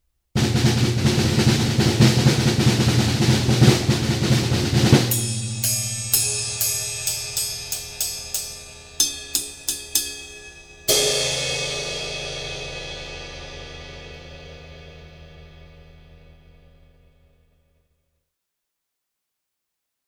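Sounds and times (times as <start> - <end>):
drum roll: 0.4 - 16.7
cymbal crash: 0.4 - 17.0.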